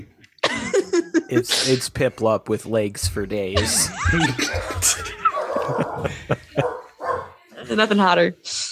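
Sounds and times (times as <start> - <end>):
laughter: 0.5 - 1.5, 3.6 - 7.0
speech: 1.0 - 6.4, 7.7 - 8.6
murmuring voices: 3.6 - 8.0
dog barking: 5.2 - 7.4.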